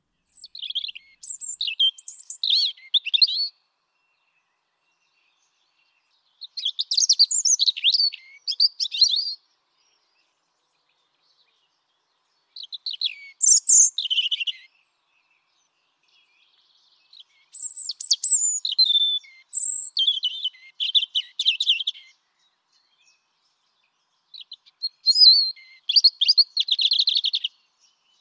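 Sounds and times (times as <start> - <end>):
European robin singing: 0.0 - 28.1.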